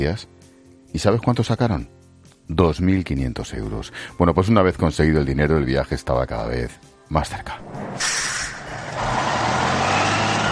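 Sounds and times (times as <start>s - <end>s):
speech: 0.0s - 1.9s, 2.5s - 8.4s
large bus engine rumbling setting out from León toward Poniente beach in Gijón: 7.6s - 10.4s
loud steady hiss of bus air brakes: 7.9s - 8.9s.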